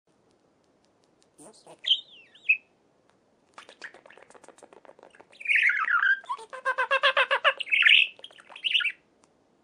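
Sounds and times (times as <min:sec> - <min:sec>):
budgerigar chattering: 0:01.4 - 0:02.6, 0:05.1 - 0:09.0
speech: 0:01.5 - 0:02.1.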